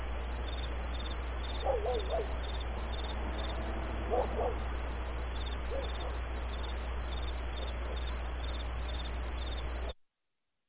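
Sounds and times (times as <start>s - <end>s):
crickets chirping at night: 0.0s - 10.0s
low background hum: 0.3s - 8.0s.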